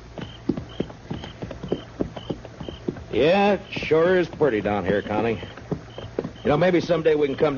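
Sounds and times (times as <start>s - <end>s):
horse hooves clip-clopping while riding: 0.0s - 7.5s
speech: 3.2s - 5.6s, 6.4s - 7.5s.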